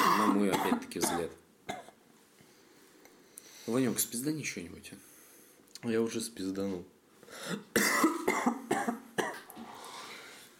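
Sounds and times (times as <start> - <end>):
harsh raspy coughing: 0.0 - 2.0, 7.4 - 9.5
speech: 0.7 - 1.4, 3.7 - 5.1, 5.8 - 8.1.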